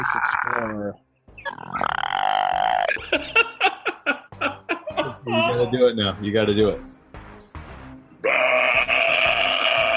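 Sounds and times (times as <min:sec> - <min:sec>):
speech: 0:00.0 - 0:01.9, 0:05.3 - 0:06.9
loud drawn-out belching burp with strained bleating tone: 0:01.4 - 0:03.0, 0:08.2 - 0:09.9
laughter: 0:02.8 - 0:05.7.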